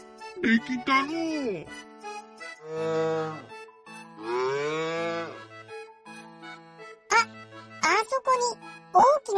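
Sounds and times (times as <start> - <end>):
speech: 0.4 - 1.9, 2.6 - 3.5
cow mooing: 2.6 - 3.5, 4.2 - 5.4
child speaking excitedly: 7.1 - 9.3.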